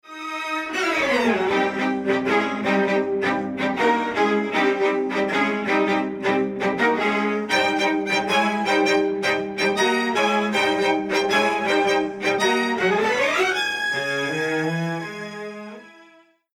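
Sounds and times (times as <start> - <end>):
staccato kizami strings: 0.2 - 15.6.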